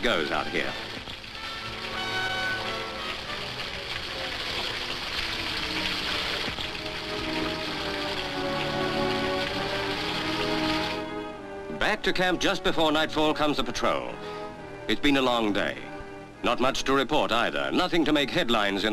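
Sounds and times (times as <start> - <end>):
speech: 0.0 - 0.9, 11.9 - 14.3, 14.9 - 18.9
steady rain falling: 0.0 - 11.4.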